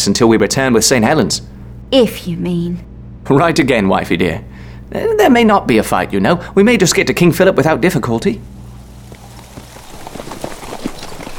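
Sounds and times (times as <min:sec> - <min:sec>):
speech: 0:00.0 - 0:08.6
horses' hooves clip-clopping as riders lead a column of troops: 0:08.4 - 0:11.3.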